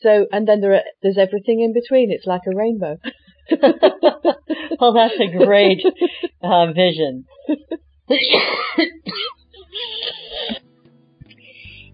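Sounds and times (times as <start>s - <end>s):
speech: 0.0s - 10.6s
laughter: 3.0s - 6.5s, 7.4s - 10.6s
harsh cough: 7.6s - 10.6s
rough throat clearing: 8.1s - 10.6s.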